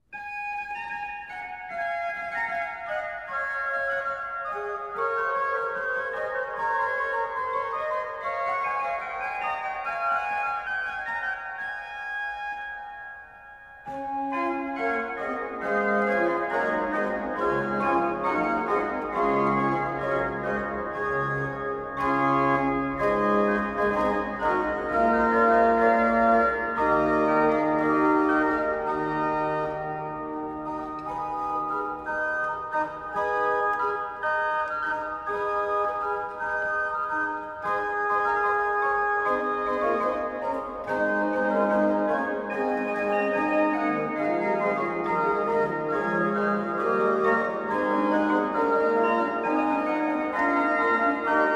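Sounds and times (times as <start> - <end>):
canzon played on organ: 0.1 - 51.5.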